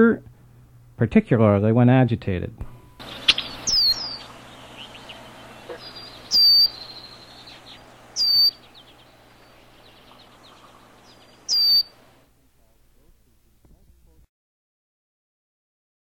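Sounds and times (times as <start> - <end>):
low background hum: 0.0 - 14.3
red-winged blackbird giving short thin high whistles: 2.7 - 12.0.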